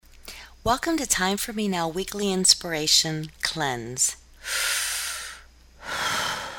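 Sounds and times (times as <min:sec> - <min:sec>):
speech: 0:00.6 - 0:04.8
person breathing heavily after shredding a large stack of papers: 0:04.4 - 0:06.5.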